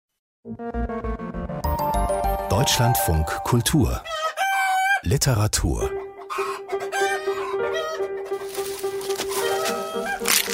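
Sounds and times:
speech: 0:00.4 - 0:01.3, 0:02.6 - 0:04.2, 0:05.0 - 0:06.0
several chickens clucking and squawking in a barnyard: 0:04.0 - 0:05.0, 0:06.0 - 0:10.4.

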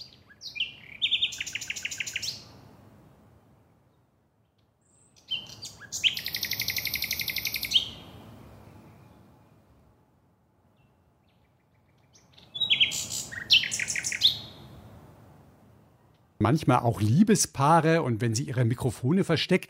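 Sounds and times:
nightingale singing: 0:00.0 - 0:02.6, 0:03.9 - 0:09.6, 0:10.7 - 0:14.8
speech: 0:16.4 - 0:19.6.

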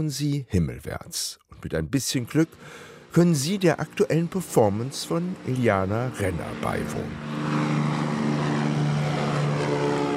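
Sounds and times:
speech: 0:00.0 - 0:07.4
propeller airplane engine drone while towing a huge banner over Berlin: 0:02.0 - 0:10.1.

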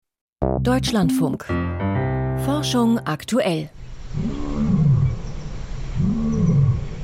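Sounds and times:
speech: 0:00.4 - 0:01.9, 0:02.5 - 0:04.4
lion roaring: 0:04.1 - 0:05.2, 0:06.0 - 0:06.9.

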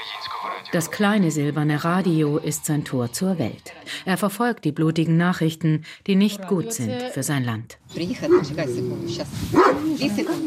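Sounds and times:
speech: 0:00.5 - 0:10.4
dog barking and yelping: 0:08.2 - 0:10.4.

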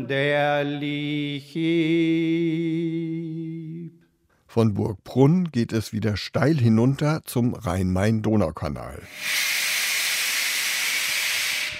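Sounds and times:
speech: 0:00.0 - 0:09.6
carbonation forming in beer at a small village brewery hissing: 0:09.1 - 0:11.7.

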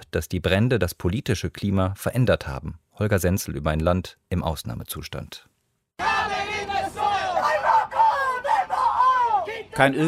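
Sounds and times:
speech: 0:00.1 - 0:05.5, 0:09.8 - 0:10.0
demonstrators chanting at a climate protest in Sydney: 0:06.0 - 0:10.0.

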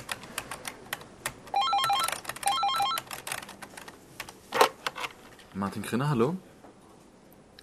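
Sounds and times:
rapid keyboard typing: 0:00.0 - 0:05.1
office phone ringing with a bright warbling electronic trill: 0:01.6 - 0:03.0
speech: 0:05.6 - 0:06.5.

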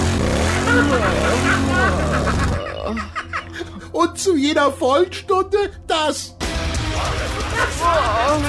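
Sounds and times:
motorcycle engine sound from novelty wall clock: 0:00.0 - 0:02.8
laughter: 0:00.3 - 0:04.0, 0:07.0 - 0:08.4
speech: 0:00.8 - 0:02.2, 0:02.9 - 0:03.3, 0:04.0 - 0:06.4, 0:07.0 - 0:08.4.

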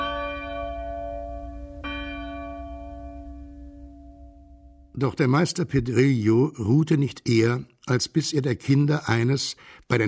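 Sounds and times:
church bell ringing in a church bell tower: 0:00.0 - 0:05.0
speech: 0:05.0 - 0:10.0.

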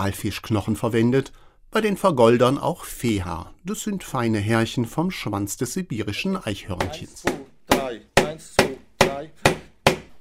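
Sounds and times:
speech: 0:00.0 - 0:09.5
hammer beating a bundle of gold leaf on a stone block: 0:06.8 - 0:10.1.

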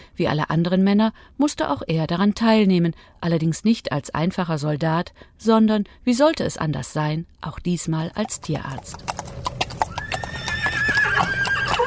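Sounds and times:
speech: 0:00.2 - 0:09.6
horse hooves clip-clopping: 0:08.1 - 0:11.8
horse whinnying in a long wavering neigh: 0:08.9 - 0:11.8.

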